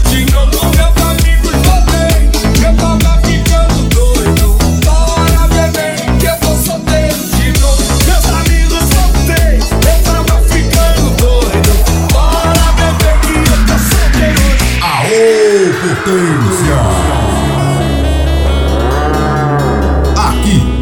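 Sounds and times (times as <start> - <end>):
heavy pounding bass-driven beat: 0.0 - 20.8
cow mooing: 17.4 - 20.4.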